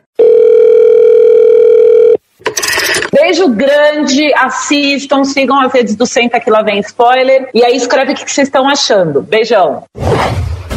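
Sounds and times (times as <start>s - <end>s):
telephone ringing with a long steady electronic tone: 0.2s - 3.2s
speech: 3.3s - 10.5s.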